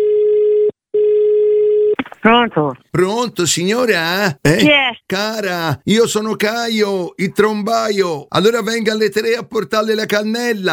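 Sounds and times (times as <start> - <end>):
telephone line tone beeps as a call is placed: 0.0 - 2.0
speech: 2.2 - 10.7.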